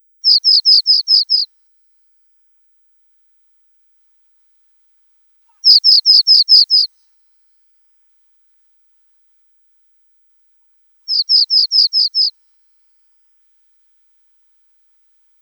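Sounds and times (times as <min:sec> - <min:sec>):
Pallas's bunting calling: 0:00.3 - 0:01.5, 0:05.5 - 0:06.9, 0:11.1 - 0:12.3.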